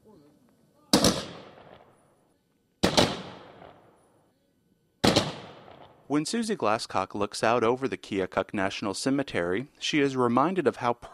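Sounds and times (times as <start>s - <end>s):
rifle volleys from a Coast Guard firing party at a military funeral: 0.9s - 1.9s, 2.8s - 3.9s, 5.0s - 6.0s
speech: 6.1s - 11.1s.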